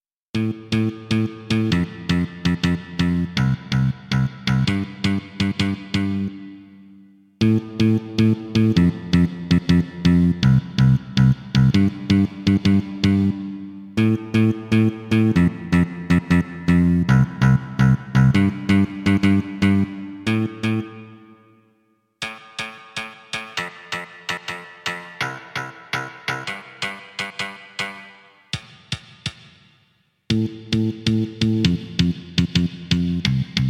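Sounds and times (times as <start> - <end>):
kick bass from a Kawai K1 synthesizer: 0.4 - 6.5, 7.4 - 21.0, 30.3 - 33.6.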